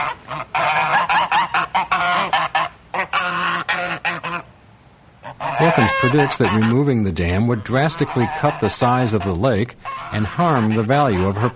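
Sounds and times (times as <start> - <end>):
flock of farm geese honking: 0.0 - 4.5, 5.2 - 11.5
speech: 5.6 - 11.5.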